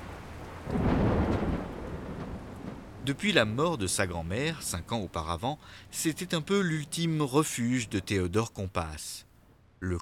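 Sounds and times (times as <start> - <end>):
rolling thunder in an early-autumn thunderstorm in Paris: 0.0 - 4.9
steady heavy rain in an early-autumn thunderstorm in Paris: 0.0 - 8.1
speech: 3.1 - 10.0.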